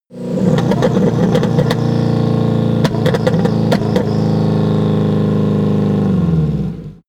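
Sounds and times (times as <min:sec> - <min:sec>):
VW T1 engine spluttering and slowing down: 0:00.1 - 0:07.0.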